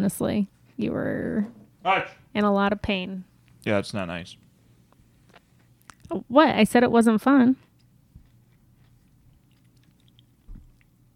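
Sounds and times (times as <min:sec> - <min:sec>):
speech: 0:00.0 - 0:04.4, 0:06.1 - 0:07.6
chewing a hard dry Italian cookie: 0:05.2 - 0:06.1, 0:07.6 - 0:11.1.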